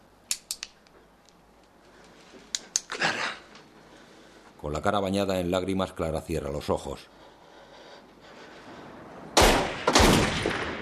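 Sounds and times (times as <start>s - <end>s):
speech: 4.6s - 7.2s
gunshots with decay: 9.4s - 10.8s.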